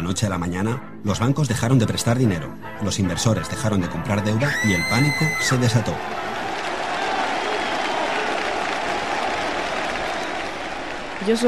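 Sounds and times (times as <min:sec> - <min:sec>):
speech: 0:00.1 - 0:06.5, 0:11.2 - 0:11.4
crowd applauding at a conference: 0:04.4 - 0:11.4.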